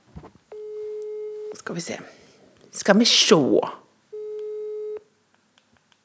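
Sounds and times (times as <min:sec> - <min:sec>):
telephone call tone through a speakerphone: 0:00.5 - 0:01.6, 0:04.1 - 0:05.1
speech: 0:01.6 - 0:03.8.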